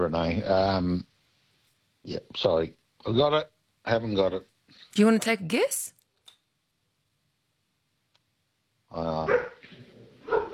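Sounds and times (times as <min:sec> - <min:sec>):
speech: 0:00.0 - 0:01.1, 0:02.0 - 0:06.0, 0:08.9 - 0:09.6
dog giving whining and sharp barks: 0:09.2 - 0:09.6, 0:10.2 - 0:10.5.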